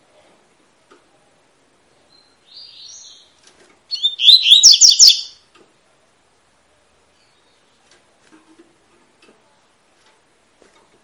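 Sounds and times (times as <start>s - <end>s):
Double-collared seedeater brisk tui-tui song with whistled lead-in and bright chirps: 2.0s - 5.4s, 7.1s - 7.8s.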